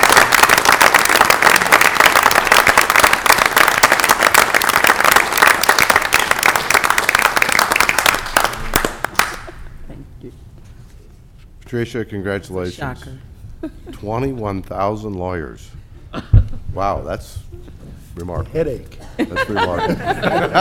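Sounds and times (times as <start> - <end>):
audience applauding: 0.0 - 9.6
speech: 11.7 - 16.2, 16.8 - 17.4, 18.2 - 20.5
laughter: 19.1 - 20.5.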